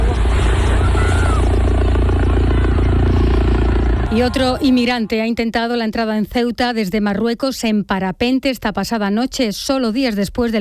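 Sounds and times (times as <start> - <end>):
Guardia Civil helicopters flying overhead with rotor thumping: 0.0 - 5.0
speech: 4.2 - 10.5.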